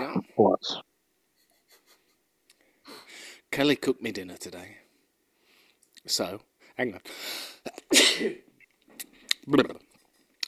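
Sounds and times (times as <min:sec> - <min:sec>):
speech: 0:00.1 - 0:00.9, 0:03.6 - 0:04.8, 0:06.0 - 0:09.8
sharp intake of breath: 0:07.1 - 0:07.6
loud sneeze: 0:07.7 - 0:08.5.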